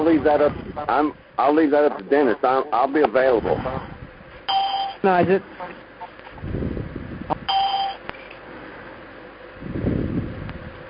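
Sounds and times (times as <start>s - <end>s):
low rumbling noise: 0.0s - 1.8s, 2.4s - 4.5s, 5.2s - 10.8s
speech: 0.1s - 3.9s, 5.0s - 5.9s
conference call electronic chime as participants leave: 4.5s - 5.0s, 7.5s - 8.0s.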